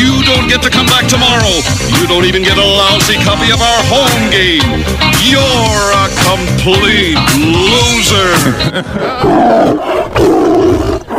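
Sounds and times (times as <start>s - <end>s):
speech: 0.5s - 10.4s
laughter: 8.2s - 9.5s
tiger roaring: 9.1s - 11.1s.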